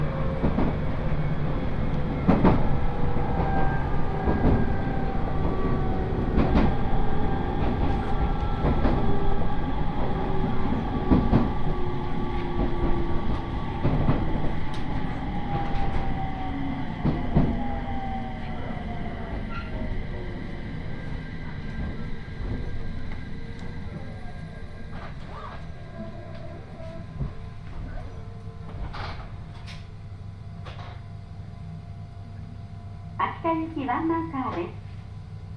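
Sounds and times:
low rumble of train wheels and motor in a crowded train car: 0.0 - 35.5
passengers murmuring: 3.2 - 29.7.

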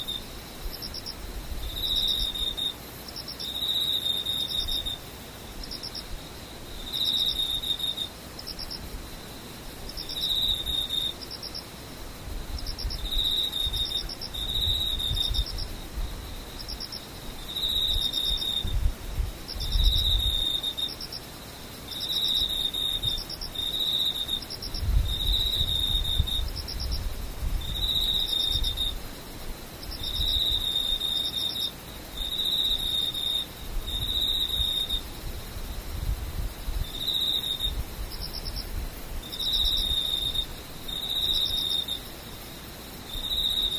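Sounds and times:
soft low rumble of wind or traffic: 0.0 - 3.7, 4.4 - 31.0, 31.8 - 43.7
insects chirping in high-pitched pulses: 0.0 - 43.7.

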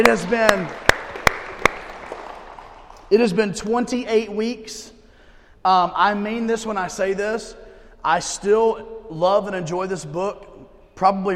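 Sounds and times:
speech: 0.0 - 0.8, 3.1 - 5.0, 5.6 - 11.3
congregation applause: 0.0 - 3.2.

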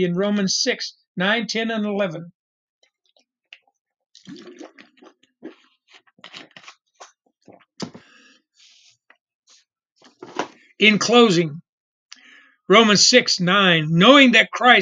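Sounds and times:
speech: 0.0 - 2.4, 10.8 - 11.6, 12.7 - 14.8
person drinking a glass of water: 3.6 - 8.1.

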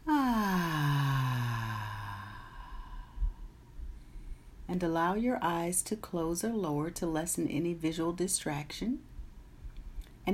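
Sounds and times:
deep breath out during a guided breathing exercise: 0.1 - 4.6
speech: 4.8 - 9.1.

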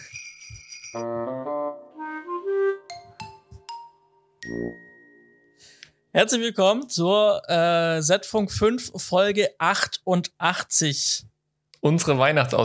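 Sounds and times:
ringing bells and chimes playing a festive intro jingle: 0.0 - 1.2, 2.9 - 5.7
speech: 0.9 - 1.8, 4.5 - 4.9, 6.1 - 12.6.

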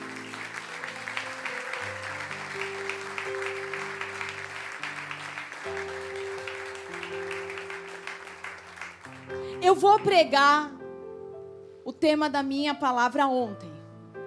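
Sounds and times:
large crowd applauding: 0.0 - 10.2
sustained keyboard chords: 0.0 - 12.6
speech: 9.7 - 10.8, 12.0 - 13.8.

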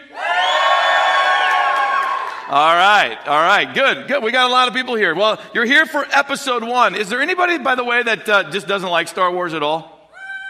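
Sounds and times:
audience screaming and cheering: 0.0 - 3.2
speech: 2.5 - 9.9.

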